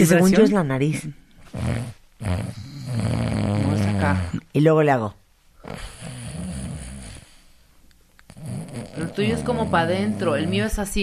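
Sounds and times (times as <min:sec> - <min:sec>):
speech: 0:00.0 - 0:06.2, 0:08.8 - 0:11.0
person imitating snoring: 0:01.5 - 0:04.4, 0:05.6 - 0:07.3, 0:08.3 - 0:10.8.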